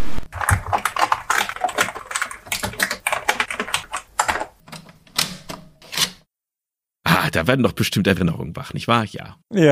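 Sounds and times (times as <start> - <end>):
typing on an Amiga 500 computer keyboard: 0.3 - 4.5
speech: 7.4 - 9.7.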